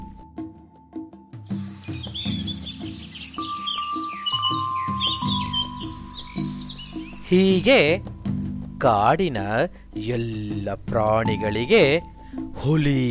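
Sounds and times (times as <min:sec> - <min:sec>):
spotted deer call in the forest: 0:01.8 - 0:08.1
low sustained tones: 0:02.7 - 0:08.8
speech: 0:07.3 - 0:08.1, 0:08.8 - 0:13.0.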